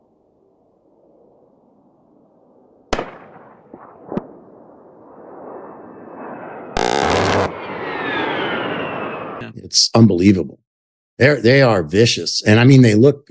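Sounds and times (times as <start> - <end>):
sharp booms: 2.9 - 9.0
aircraft's jet engines roaring: 4.9 - 9.6
jet's 30 mm Gatling cannon buzzing burst: 6.8 - 8.1
speech: 9.4 - 10.6, 11.2 - 13.2.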